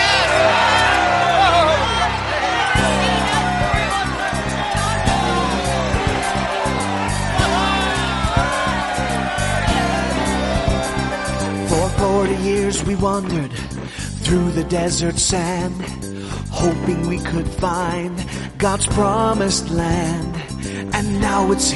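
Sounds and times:
crowd shouting and yelling: 0:00.0 - 0:13.2
speech: 0:13.0 - 0:13.7, 0:14.3 - 0:21.7.

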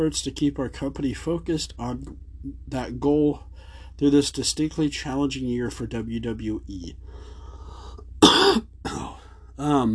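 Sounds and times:
speech: 0:00.0 - 0:07.3, 0:09.6 - 0:09.9
gravelly throat clearing: 0:08.2 - 0:09.3
person coughing: 0:08.2 - 0:09.3.

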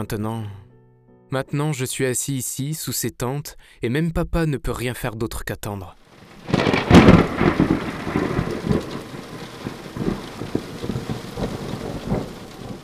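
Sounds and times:
speech: 0:00.0 - 0:00.6, 0:01.3 - 0:08.9
rain pattering: 0:06.1 - 0:12.8
thunder rumbling: 0:06.1 - 0:12.8.

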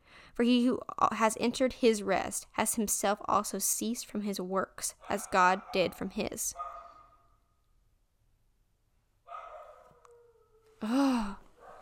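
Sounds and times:
speech: 0:00.4 - 0:06.7, 0:10.8 - 0:11.4
pet dog barking faintly: 0:05.0 - 0:07.4, 0:09.3 - 0:10.7, 0:11.6 - 0:11.7.

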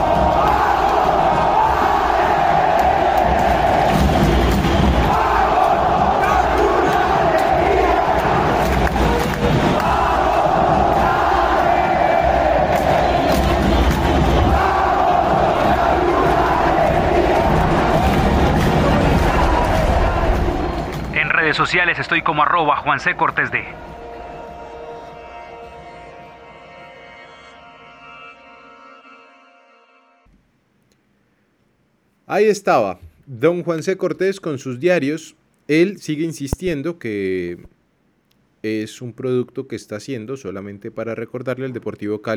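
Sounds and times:
huge stadium crowd roaring and cheering in celebration: 0:00.0 - 0:25.4
speech: 0:21.7 - 0:23.8, 0:32.4 - 0:37.7, 0:38.6 - 0:42.3.

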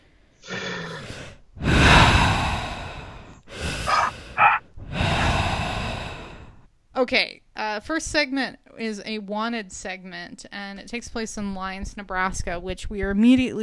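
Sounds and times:
heavy breathing into the microphone: 0:01.0 - 0:06.7
speech: 0:07.0 - 0:13.6.

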